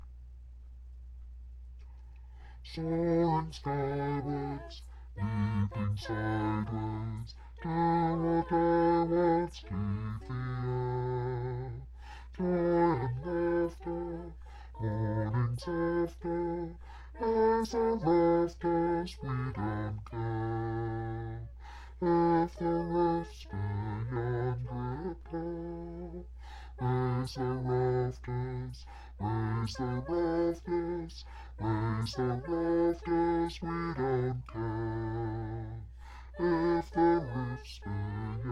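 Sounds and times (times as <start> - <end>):
men singing in unison in a low register: 2.7 - 26.2, 26.8 - 38.5.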